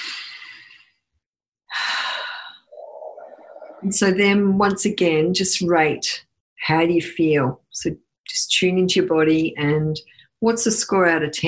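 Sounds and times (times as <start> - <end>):
big deep breaths: 1.7 - 3.7
speech: 3.8 - 11.4.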